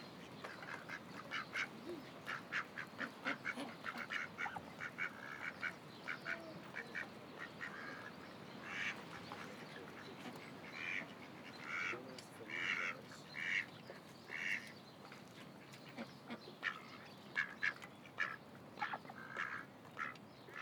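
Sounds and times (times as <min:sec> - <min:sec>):
duck quacking: 0:00.5 - 0:13.7, 0:14.3 - 0:14.7, 0:16.0 - 0:20.6.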